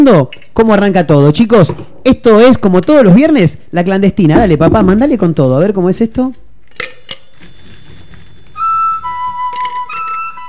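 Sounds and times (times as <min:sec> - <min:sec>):
speech: 0:00.0 - 0:07.0
clear sustained glassy ringing tones: 0:06.7 - 0:10.1
ice cubes clinking against a glass: 0:06.8 - 0:08.7.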